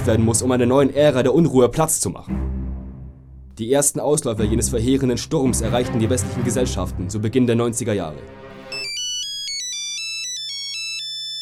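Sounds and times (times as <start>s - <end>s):
speech: 0.0s - 2.6s, 3.6s - 8.4s
mobile phone ringtone with bright electronic melody: 8.7s - 11.3s.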